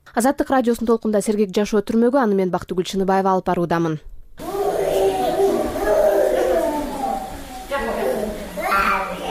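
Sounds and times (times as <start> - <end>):
speech: 0.1 - 4.1
sick feverish young child crying in an infectious diseases hospital: 4.4 - 9.2.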